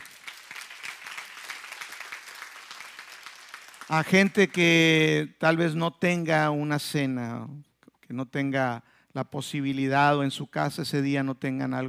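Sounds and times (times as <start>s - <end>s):
crowd applauding: 0.0s - 5.0s
speech: 3.9s - 11.8s.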